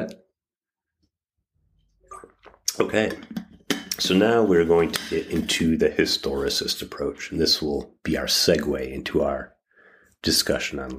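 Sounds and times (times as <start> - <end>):
person gulping and swallowing water: 2.0 - 4.0
speech: 2.8 - 3.4, 4.0 - 9.6, 10.2 - 10.9.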